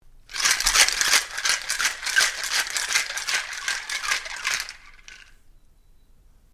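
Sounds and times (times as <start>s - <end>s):
bar cocktail shaker shaking: 0.3s - 5.4s.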